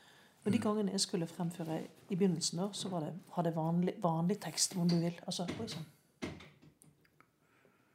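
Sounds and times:
speech: 0.4 - 6.0
door clicking and rattling as it settles: 5.5 - 6.8.

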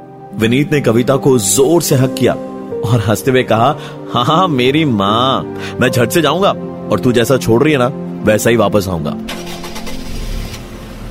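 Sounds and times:
speech: 0.3 - 9.6
car engine starting and running: 9.3 - 11.1.

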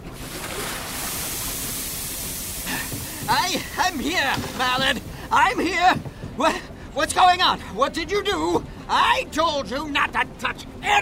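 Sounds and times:
water splashing: 0.0 - 6.0
water dumped from a bucket into a furnace rushing and hissing: 0.0 - 6.9
speech: 3.3 - 11.0.

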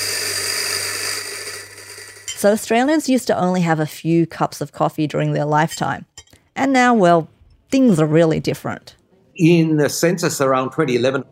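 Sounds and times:
coffee machine making a latte with lemon myrtle coffee: 0.0 - 3.3
speech: 2.4 - 11.3.

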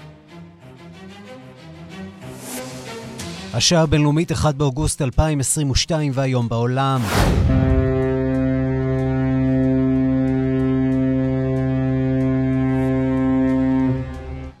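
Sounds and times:
speech: 3.5 - 7.7
deep ship horn blast in a port: 7.1 - 14.5.

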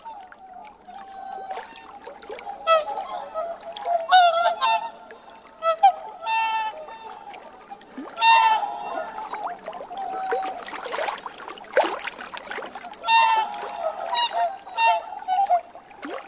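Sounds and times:
soft water splashes: 0.0 - 16.2
whooper swans trumpeting: 0.9 - 11.6, 12.7 - 16.1.

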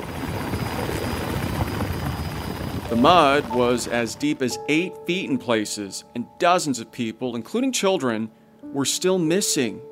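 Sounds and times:
rescue helicopter flying overhead with rotor chop and engine whine: 0.0 - 4.0
speech: 2.9 - 9.8.

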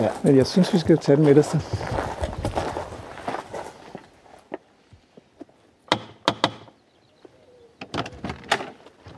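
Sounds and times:
speech: 0.0 - 2.0
footsteps: 0.0 - 5.6.

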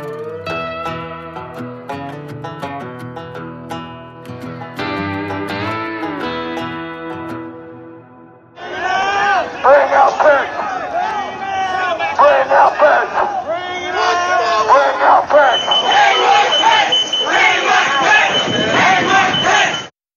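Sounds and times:
large angry crowd shouting and chanting while storming the US Congress: 8.5 - 19.9
steady high electronic tone: 15.0 - 19.9.

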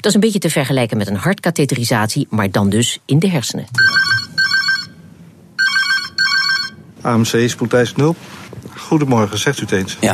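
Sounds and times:
speech: 0.0 - 4.3, 7.0 - 10.1
low hum of room noise: 0.0 - 10.1
telephone ringing with electronic trilling bursts: 3.8 - 6.9.

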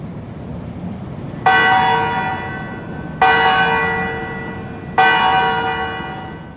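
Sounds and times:
low rumble: 0.0 - 6.5
church tower bell strikes: 1.4 - 6.5.

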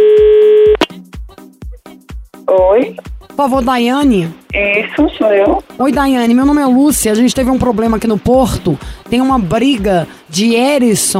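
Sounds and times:
telephone dial tone: 0.0 - 0.8
speech: 2.8 - 11.1.

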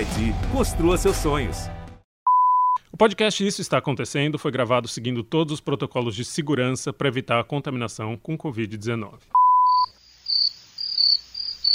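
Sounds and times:
speech: 0.2 - 1.8, 3.0 - 9.4
crickets chirping around a house in the woods near a lake: 9.7 - 11.7.

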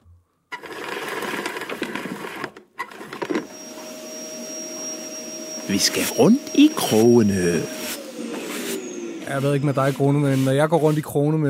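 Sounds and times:
vacuum cleaner running: 2.8 - 11.1
speech: 5.7 - 7.8, 9.3 - 11.4.

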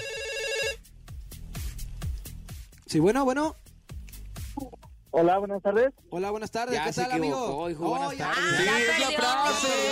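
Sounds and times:
warbling electronic telephone ring: 0.0 - 0.8
steady thumping music beat: 0.8 - 6.0
speech: 2.9 - 3.6, 5.1 - 9.8.

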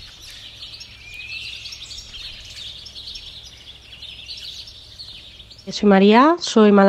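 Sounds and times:
chorus of many birds chirping and twittering outside an open window: 0.0 - 6.8
low steady hum: 0.0 - 6.8
speech: 5.7 - 6.8.

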